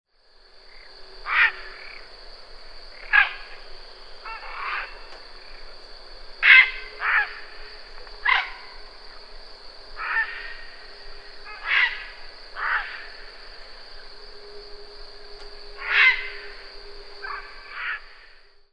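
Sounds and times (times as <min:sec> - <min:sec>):
grey heron: 0:01.2 - 0:02.1, 0:02.9 - 0:05.8, 0:06.4 - 0:09.2, 0:10.0 - 0:14.1, 0:15.8 - 0:16.6, 0:17.2 - 0:18.4.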